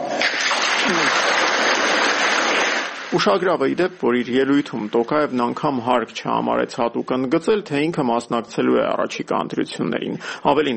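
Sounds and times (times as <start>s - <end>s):
parliament deputies applauding: 0.2s - 2.9s
speech: 3.1s - 10.7s.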